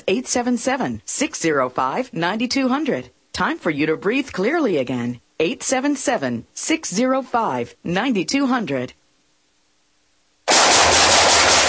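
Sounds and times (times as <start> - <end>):
speech: 0.1 - 9.0
automatic gunfire: 10.5 - 11.6.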